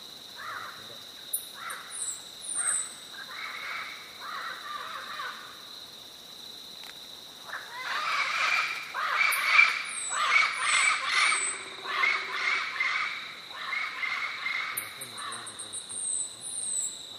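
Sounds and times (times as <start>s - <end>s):
yellow-crowned amazon calls: 7.7s - 15.3s.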